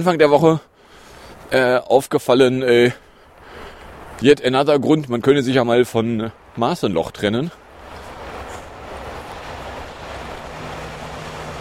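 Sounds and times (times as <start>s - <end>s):
speech: 0.0s - 0.7s, 1.5s - 3.0s, 4.2s - 7.6s
subway train running on rails: 8.1s - 11.6s.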